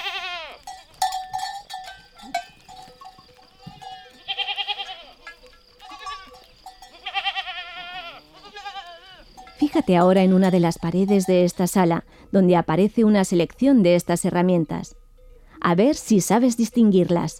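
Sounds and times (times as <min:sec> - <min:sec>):
goats and sheep bleating: 0:00.0 - 0:11.1
small livestock bells with holm-oak heartwood clappers on grazing goats and sheep: 0:00.6 - 0:17.3
speech: 0:09.7 - 0:15.0, 0:15.6 - 0:17.3.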